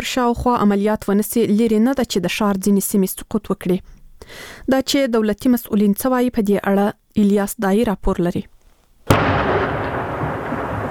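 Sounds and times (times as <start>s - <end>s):
speech: 0.0s - 8.5s
D-30 artillery cannon firing at night: 9.1s - 10.8s
long dense rolling roar after artillery cannon blast: 9.1s - 10.8s.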